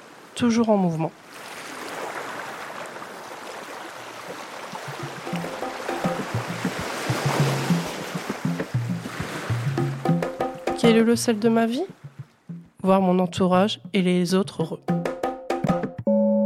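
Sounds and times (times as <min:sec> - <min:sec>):
sea waves: 0:00.0 - 0:13.8
speech: 0:00.4 - 0:01.5, 0:10.8 - 0:12.0, 0:12.8 - 0:15.0
soft music: 0:05.0 - 0:16.4.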